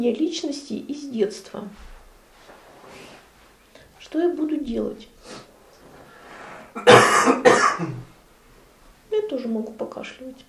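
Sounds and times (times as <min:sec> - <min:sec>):
speech: 0:00.0 - 0:01.9, 0:04.1 - 0:05.5, 0:06.8 - 0:08.0, 0:09.1 - 0:10.4
person coughing: 0:06.8 - 0:08.1.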